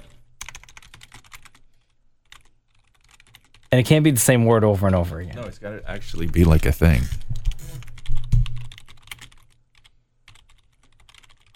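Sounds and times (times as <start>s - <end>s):
typing on a computer keyboard with backspacing: 0.0s - 3.7s, 7.2s - 11.5s
speech: 3.7s - 7.2s.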